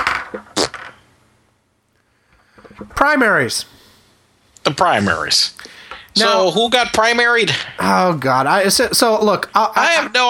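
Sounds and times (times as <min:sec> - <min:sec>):
dice rolling: 0:00.0 - 0:01.0
speech: 0:03.0 - 0:03.8, 0:04.7 - 0:10.2.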